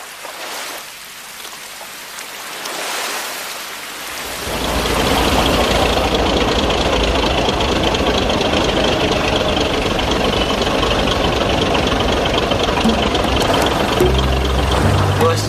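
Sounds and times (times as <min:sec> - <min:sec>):
broad hissing water wash from a boat: 0:04.0 - 0:15.4
boat engine running at night: 0:04.2 - 0:15.4.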